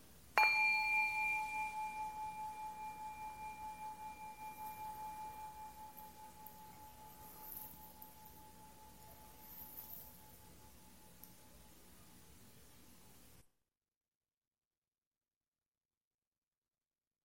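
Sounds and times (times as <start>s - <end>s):
meditation bell struck: 0.4s - 11.0s.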